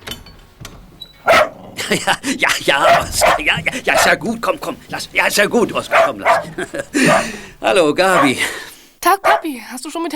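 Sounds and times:
dog barking and yipping excitedly: 1.2 - 1.6, 2.7 - 4.3, 5.7 - 7.4, 8.0 - 9.6
laughter: 1.6 - 8.7
speech: 1.9 - 10.1.

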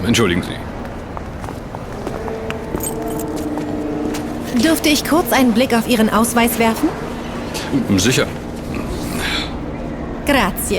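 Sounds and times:
speech: 0.0 - 0.7, 4.5 - 8.4, 10.3 - 10.7
steady low hum: 0.0 - 10.7
jingle of room keys being handed over: 2.0 - 3.8.

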